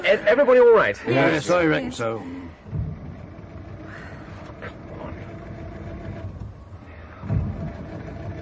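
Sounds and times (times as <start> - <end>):
speech: 0.1 - 2.7
car engine cranking without starting after hitting a snowdrift: 1.4 - 8.4.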